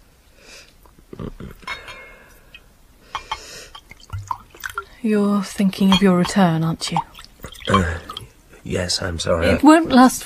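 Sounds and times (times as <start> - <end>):
wine pouring into glasses: 1.3 - 5.0, 5.7 - 8.3
light glassy clinks: 1.6 - 4.8, 5.8 - 6.4, 7.5 - 8.2
speech: 5.0 - 7.1, 8.7 - 10.2.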